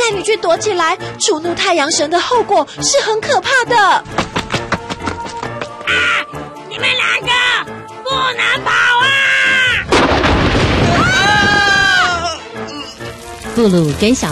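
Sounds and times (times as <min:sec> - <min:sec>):
speech: 0:00.2 - 0:04.6, 0:05.9 - 0:07.4, 0:08.1 - 0:09.2, 0:13.6 - 0:14.3
lightning thunderclap: 0:09.8 - 0:11.9.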